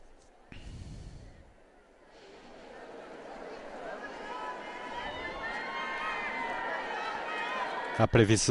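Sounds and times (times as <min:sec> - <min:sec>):
murmuring voices: 0:01.6 - 0:08.5
large crowd applauding: 0:02.2 - 0:08.5
speech: 0:08.0 - 0:08.5.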